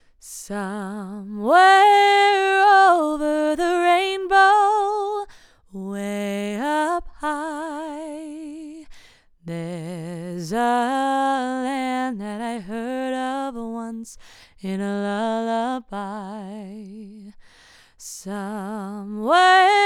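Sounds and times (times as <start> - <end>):
woman singing: 0.2 - 19.8.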